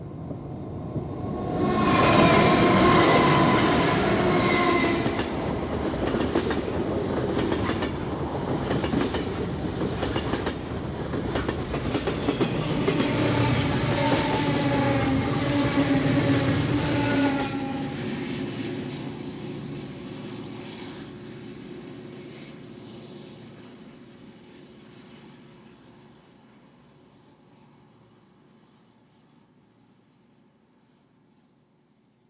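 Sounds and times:
train passing on rails with a loud steady rumble: 0.0 - 25.9
train wheels clickety-clack: 5.0 - 13.2.

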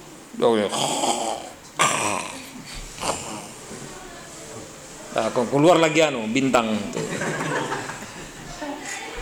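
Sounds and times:
speech: 0.4 - 2.8, 5.2 - 7.2
voice imitating snoring of a person sleeping upright: 0.7 - 3.6
laughter: 6.9 - 9.0.

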